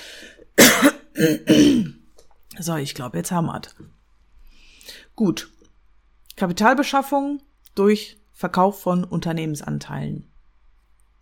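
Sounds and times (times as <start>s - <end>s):
person clearing throat: 0.6s - 2.0s
speech: 1.2s - 2.0s, 2.6s - 4.0s, 4.9s - 5.6s, 6.4s - 10.3s.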